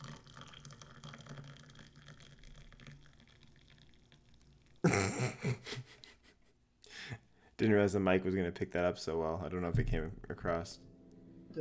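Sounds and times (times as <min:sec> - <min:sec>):
tea pouring into a cup: 0:00.0 - 0:04.8
speech: 0:07.6 - 0:10.9.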